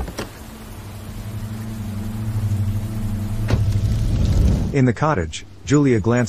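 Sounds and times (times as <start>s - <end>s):
pouring rain: 0.0s - 6.2s
car engine driving off from a cottage: 0.8s - 5.0s
speech: 4.7s - 6.2s.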